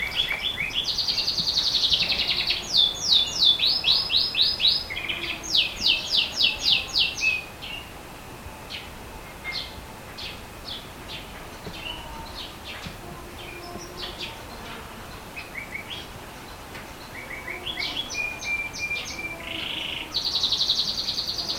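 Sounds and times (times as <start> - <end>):
unknown bird calling: 0.0 - 21.5.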